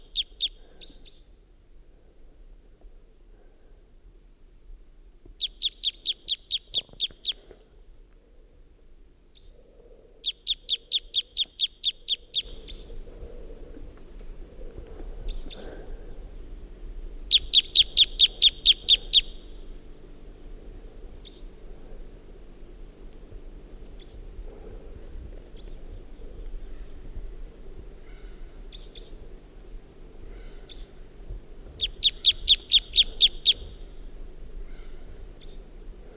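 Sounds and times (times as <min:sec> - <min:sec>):
wild bird giving type 2 calls and song at dawn: 0:00.0 - 0:01.3, 0:05.4 - 0:07.6, 0:09.3 - 0:09.6, 0:10.2 - 0:13.0, 0:15.2 - 0:15.7, 0:17.3 - 0:19.5, 0:21.2 - 0:21.5, 0:23.9 - 0:24.3, 0:25.5 - 0:27.1, 0:28.0 - 0:29.2, 0:30.3 - 0:31.0, 0:31.8 - 0:34.0, 0:34.6 - 0:35.7
low steady hum: 0:00.0 - 0:36.1.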